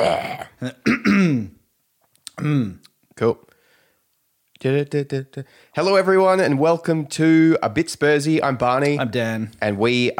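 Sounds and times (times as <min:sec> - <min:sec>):
speech: 0:00.0 - 0:01.5, 0:02.4 - 0:03.5, 0:04.6 - 0:10.1
person clearing throat: 0:00.0 - 0:01.6, 0:02.3 - 0:02.8.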